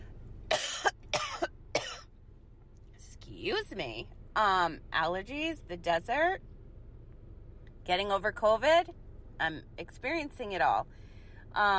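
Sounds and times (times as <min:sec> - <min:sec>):
person coughing: 0:00.5 - 0:02.1
speech: 0:03.4 - 0:06.5, 0:07.9 - 0:11.7.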